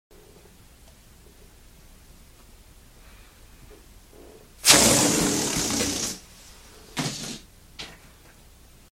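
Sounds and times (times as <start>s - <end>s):
air deflating: 4.6s - 6.3s.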